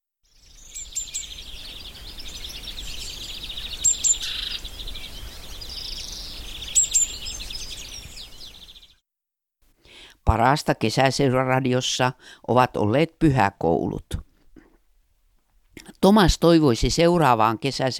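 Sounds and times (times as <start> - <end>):
bird singing: 0.3 - 9.0
speech: 10.3 - 14.3, 16.0 - 17.9.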